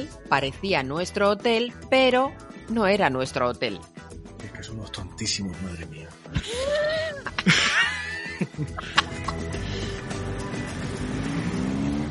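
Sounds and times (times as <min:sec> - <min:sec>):
speech: 0:00.0 - 0:03.9, 0:04.6 - 0:06.6, 0:08.5 - 0:09.1
laughter: 0:06.3 - 0:09.8
busy street and traffic noise in Madrid: 0:09.0 - 0:12.0
motorcycle passing by on a street in Madrid: 0:09.5 - 0:12.0.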